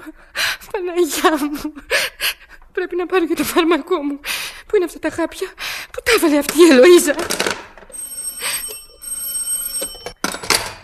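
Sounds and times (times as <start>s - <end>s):
speech: 0.1s - 7.6s
telephone bell ringing: 7.9s - 10.6s.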